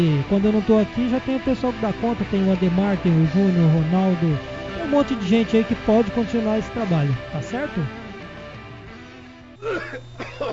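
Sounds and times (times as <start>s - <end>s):
speech: 0.0s - 8.0s, 9.6s - 10.5s
person coughing and clearing throat: 9.6s - 10.5s.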